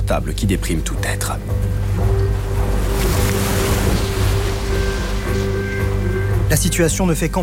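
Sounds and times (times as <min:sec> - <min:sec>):
speech: 0:00.1 - 0:02.2, 0:06.5 - 0:07.4
rough sea waves crashing in a storm at sea: 0:00.6 - 0:07.4
gusting wind at sea: 0:01.5 - 0:06.5.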